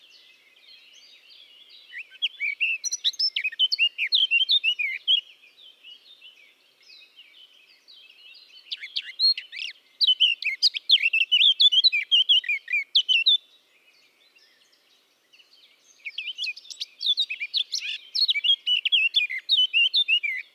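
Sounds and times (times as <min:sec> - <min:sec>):
Eurasian blackcap Sylvia atricapilla warbling song: 0:01.9 - 0:05.2, 0:08.6 - 0:13.4, 0:15.9 - 0:20.5.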